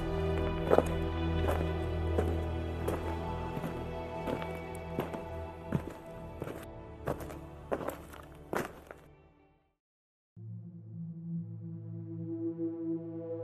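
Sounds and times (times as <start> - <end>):
slow echoing footsteps walking over a hard surface: 0.0 - 9.0
soft sustained musical drone: 0.0 - 9.6, 10.4 - 13.4.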